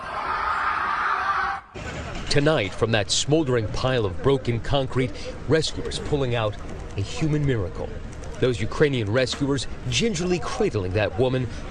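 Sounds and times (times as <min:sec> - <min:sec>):
several survivors screaming in terror: 0:00.0 - 0:01.8
speech: 0:02.3 - 0:11.6.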